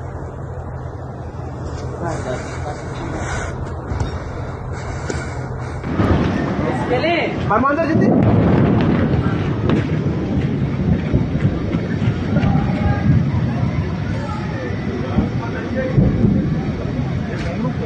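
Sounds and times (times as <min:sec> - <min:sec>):
voices: 0:00.0 - 0:17.8
long loud rumbling roar after an explosion: 0:01.2 - 0:17.8
heavy explosive boom in a city: 0:05.8 - 0:17.8.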